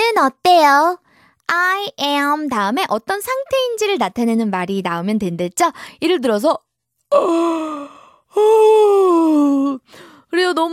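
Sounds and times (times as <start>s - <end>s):
speech: 0.2s - 10.7s
person yawning: 7.1s - 9.8s.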